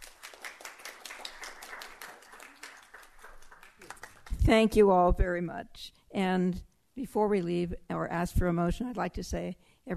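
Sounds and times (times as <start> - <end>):
room full of people applauding: 0.0 - 4.4
speech: 4.5 - 9.9.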